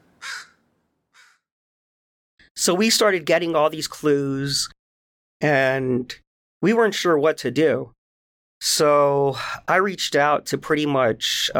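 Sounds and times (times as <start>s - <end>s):
crows cawing outdoors: 0.0s - 1.5s
speech: 2.6s - 4.8s, 5.4s - 8.0s, 8.6s - 11.5s.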